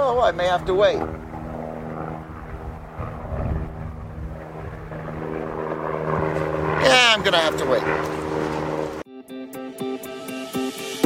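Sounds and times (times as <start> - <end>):
helicopter passing low overhead with engine drone and rotor hum: 0.0 - 9.1
speech: 0.2 - 1.2, 6.8 - 8.2.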